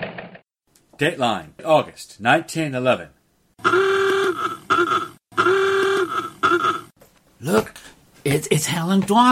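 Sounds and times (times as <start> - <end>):
speech: 1.0 - 4.0, 7.4 - 9.3
old-fashioned horn of a 1911 motor car honking: 3.6 - 6.9.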